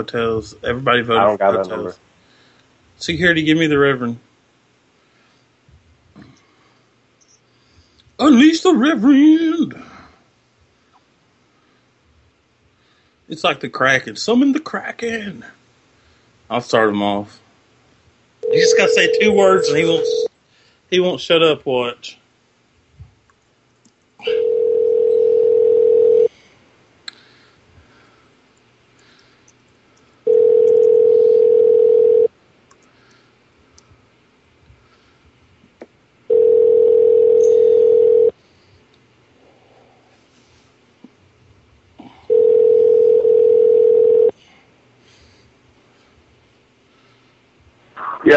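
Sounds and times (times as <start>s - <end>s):
speech: 0.0s - 2.1s, 3.0s - 4.3s, 8.3s - 9.9s, 13.3s - 15.6s, 16.5s - 17.4s, 18.5s - 20.3s, 20.9s - 22.2s
ringback tones from an outgoing phone call: 18.4s - 20.3s, 24.2s - 26.3s, 30.3s - 32.3s, 36.3s - 38.3s, 42.3s - 44.3s.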